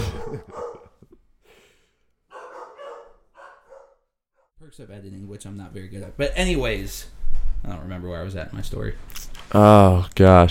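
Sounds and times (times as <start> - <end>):
dogs barking in short sharp bursts: 0.0 - 1.0, 2.3 - 4.0
speech: 4.6 - 10.5.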